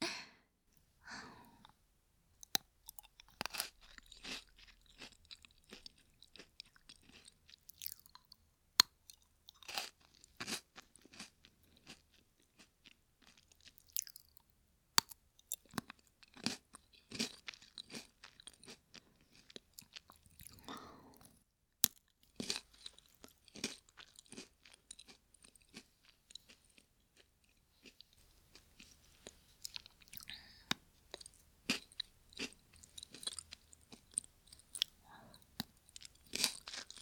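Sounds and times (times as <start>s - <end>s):
crunchy food being chewed: 2.4s - 37.0s
soft breaths: 28.2s - 30.9s, 34.9s - 35.6s.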